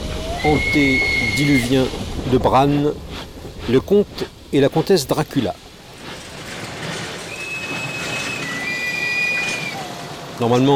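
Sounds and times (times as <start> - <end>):
high train wheel squeals: 0.0 - 1.9, 5.9 - 10.6
train travelling along rails: 0.0 - 10.7
speech: 0.4 - 5.6, 10.4 - 10.7.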